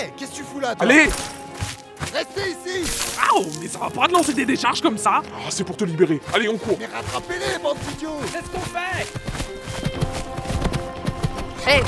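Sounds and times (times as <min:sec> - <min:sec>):
speech: 0:00.0 - 0:01.3, 0:02.1 - 0:10.0, 0:11.7 - 0:11.8
horse hooves clip-clopping: 0:06.2 - 0:11.8.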